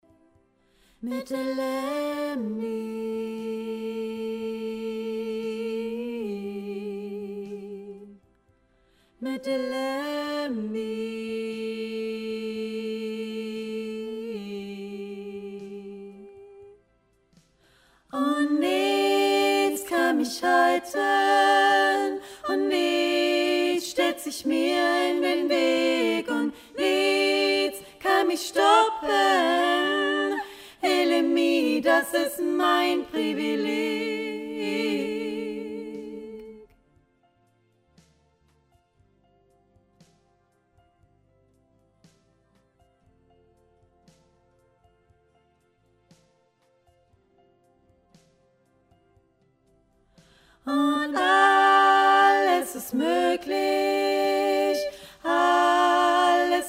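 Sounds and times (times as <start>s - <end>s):
choir voices singing a cappella: 1.0s - 8.2s, 9.2s - 16.8s, 18.0s - 36.8s, 50.6s - 56.6s.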